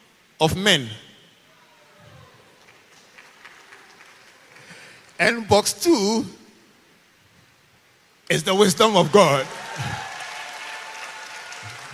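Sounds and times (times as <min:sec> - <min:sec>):
speech: 0:00.4 - 0:01.0, 0:05.2 - 0:06.4, 0:08.3 - 0:10.1
audience of many people clapping: 0:02.6 - 0:05.2, 0:09.1 - 0:11.9.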